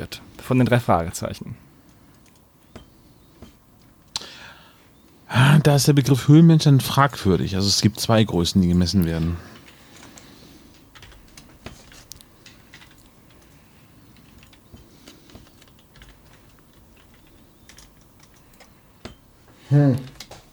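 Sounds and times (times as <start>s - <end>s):
speech: 0.1s - 1.7s, 5.3s - 9.5s
typing on a computer keyboard: 1.8s - 4.2s, 9.1s - 19.2s, 20.0s - 20.5s.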